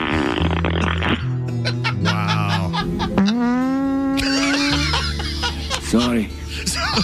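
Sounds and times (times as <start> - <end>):
buzzy pitched fart sound effects: 0.0 - 1.5, 3.2 - 5.0
steady musical backing with sustained low notes: 0.0 - 7.0
laughter: 1.4 - 3.4, 4.2 - 7.0.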